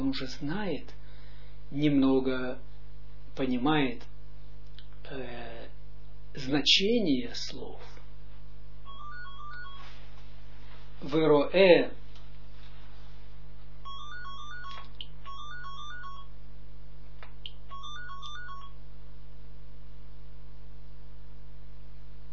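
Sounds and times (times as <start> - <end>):
speech: 0.0 - 1.0, 1.7 - 2.7, 3.4 - 4.1, 5.0 - 5.8, 6.4 - 8.0, 11.0 - 12.0
steady low electrical hum: 0.0 - 22.3
phone ringtone for an incoming call: 8.9 - 10.0, 13.8 - 16.4, 17.6 - 18.8.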